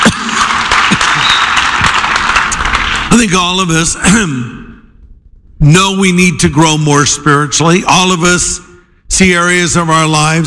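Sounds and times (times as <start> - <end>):
church congregation applauding during a sermon: 0.0 - 3.7
speech: 3.1 - 4.7, 5.6 - 10.4.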